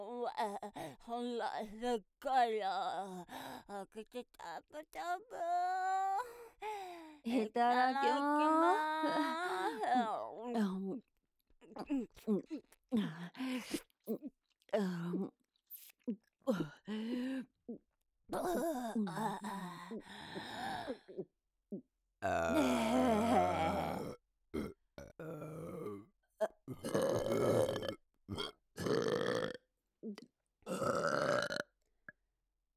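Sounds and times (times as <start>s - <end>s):
speech: 0.2s - 11.1s, 11.7s - 15.4s, 16.0s - 31.5s
grunting or moaning vocal sounds: 22.2s - 26.0s
loud throaty burps: 22.2s - 29.6s, 30.7s - 31.7s.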